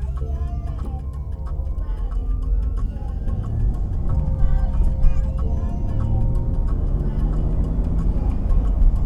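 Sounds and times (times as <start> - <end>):
car engine and road rumble in a car cabin while driving: 0.0 - 9.0
faint rhythmic ticking in a car cabin: 0.0 - 9.0.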